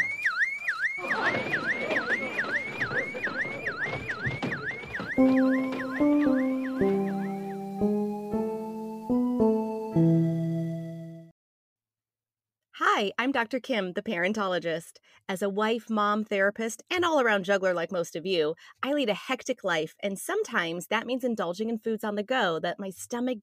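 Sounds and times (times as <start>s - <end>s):
loud electronic alarm blaring: 0.0s - 11.2s
speech: 5.2s - 5.6s, 13.2s - 23.4s.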